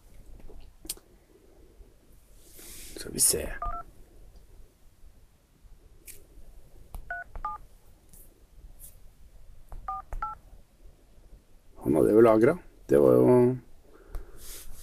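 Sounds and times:
low hum: 0.0 - 14.4
speech: 3.0 - 3.7, 12.3 - 13.6
dual-tone keypad beeps dialing a phone number: 3.6 - 3.8, 7.1 - 7.6, 9.8 - 10.4.

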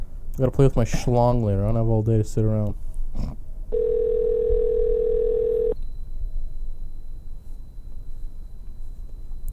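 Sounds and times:
speech: 0.4 - 3.4
outgoing phone call ringing tone: 3.7 - 5.8.

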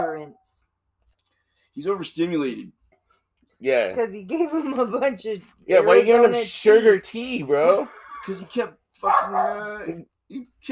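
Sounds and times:
speech: 1.8 - 2.8, 3.6 - 10.6
bored overstimulated dog barking: 9.0 - 9.8.

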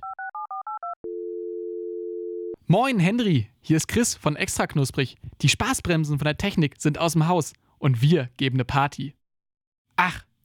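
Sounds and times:
steady unbroken phone line tone: 0.0 - 2.6
speech: 2.7 - 9.2, 10.0 - 10.3.

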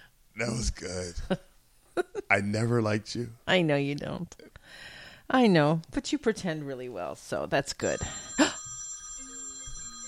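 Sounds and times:
speech: 0.4 - 8.3
telephone ringing with a bright electronic trill: 7.8 - 10.0.

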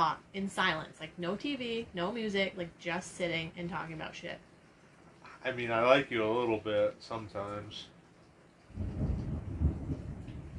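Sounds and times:
speech: 0.0 - 4.5, 5.4 - 7.9
faint rain hiss: 0.0 - 10.5
thunder rumbling outside: 8.7 - 10.5.

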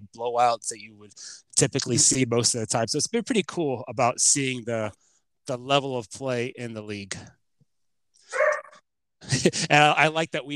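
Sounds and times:
speech: 0.1 - 7.4, 9.2 - 10.5
dog barking: 8.3 - 8.8
laughter: 9.2 - 10.0.

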